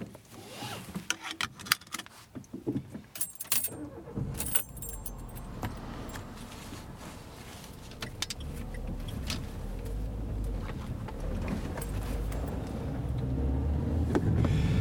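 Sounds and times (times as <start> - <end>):
keys jangling: 3.2 - 3.8, 4.4 - 6.4, 11.6 - 12.6
car engine starting and running: 3.2 - 14.7.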